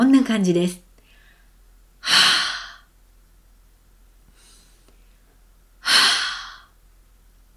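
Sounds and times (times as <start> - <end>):
forceful exhales of warm breath onto an open palm during a breathing exercise: 2.0 - 2.9, 5.8 - 6.7.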